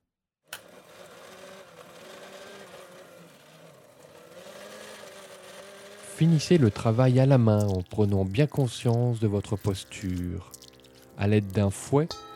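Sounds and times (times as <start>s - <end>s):
electric blender running: 0.5s - 8.4s
speech: 6.2s - 10.6s, 11.2s - 12.3s.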